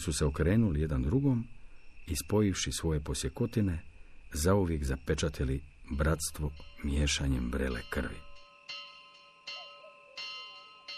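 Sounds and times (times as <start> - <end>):
speech: 0.0 - 8.3
alarm bell struck by a night watchman: 6.5 - 10.9.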